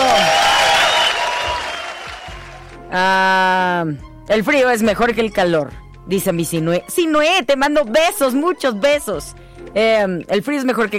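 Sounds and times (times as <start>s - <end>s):
audience applause at a live event: 0.0s - 2.8s
speech: 2.9s - 10.9s.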